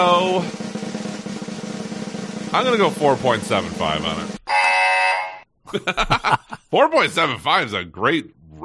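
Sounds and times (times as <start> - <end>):
speech: 0.0 - 0.6, 2.5 - 4.4, 5.7 - 8.6
loud harsh buzzer sound effect: 4.4 - 5.5
laughter: 5.7 - 6.8.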